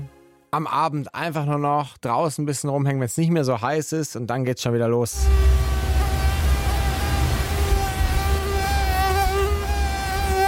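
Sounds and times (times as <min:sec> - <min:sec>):
speech: 0:00.5 - 0:05.7
mosquito buzzing: 0:05.2 - 0:10.4.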